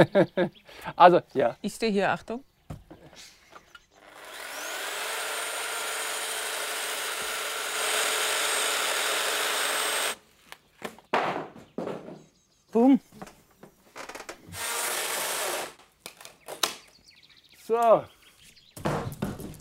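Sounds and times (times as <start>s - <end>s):
speech: 0.0s - 2.5s, 12.8s - 13.1s, 17.8s - 18.2s
power saw cutting a window opening in wood: 4.0s - 10.2s, 14.5s - 15.8s
brief knocks: 11.1s - 12.3s, 18.8s - 19.5s.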